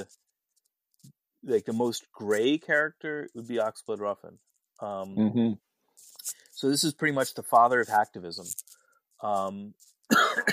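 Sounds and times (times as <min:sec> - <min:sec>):
speech: 0:00.0 - 0:00.2, 0:01.4 - 0:10.5
person coughing harshly: 0:10.1 - 0:10.5.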